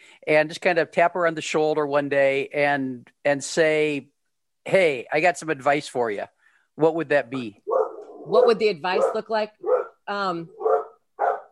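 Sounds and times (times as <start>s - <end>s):
speech: 0.2s - 10.6s
dog barking at a man putting fertilizer on the lawn: 7.4s - 11.4s.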